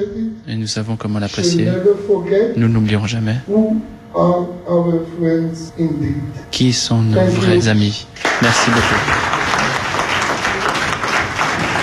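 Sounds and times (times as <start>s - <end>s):
speech: 0.0s - 9.3s
audience rising to its feet and applauding at the end of a speech: 8.2s - 11.8s.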